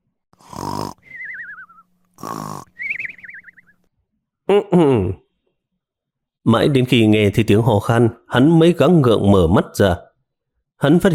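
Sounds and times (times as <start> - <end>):
man snoring in deep sleep: 0.4 - 1.4, 2.2 - 3.0
high wavering whistle on the out-breath: 1.0 - 1.9, 2.8 - 3.8
speech: 2.2 - 2.7, 4.5 - 5.1, 6.5 - 10.0, 10.8 - 11.1.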